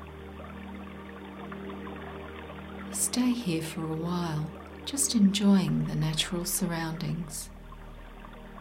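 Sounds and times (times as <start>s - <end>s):
water rushing in a small creek over rocks and pebbles: 0.0s - 8.5s
speech: 3.0s - 7.5s.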